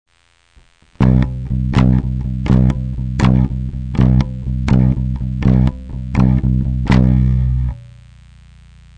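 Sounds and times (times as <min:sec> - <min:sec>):
accented bass note played with the right hand: 0:01.0 - 0:08.1.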